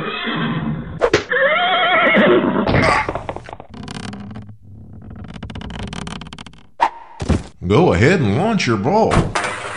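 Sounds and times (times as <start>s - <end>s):
horse whinnying: 0.0s - 3.3s
speech: 7.7s - 9.4s.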